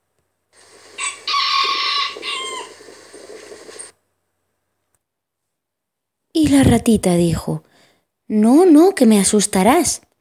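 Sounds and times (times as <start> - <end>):
rooster crowing: 0.6 - 3.8
speech: 6.4 - 7.7, 8.3 - 10.1.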